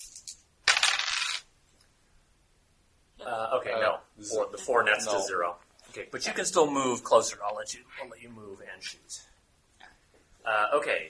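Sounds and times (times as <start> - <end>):
D8 and D6 dice rolled during a tabletop game: 0.0 - 1.5
speech: 3.2 - 9.4, 10.4 - 11.0.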